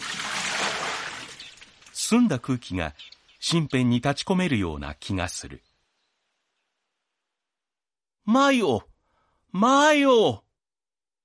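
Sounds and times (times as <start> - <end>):
water poured from a well bucket into a pail: 0.0 - 2.0
speech: 2.1 - 5.7, 8.2 - 8.9, 9.5 - 10.4.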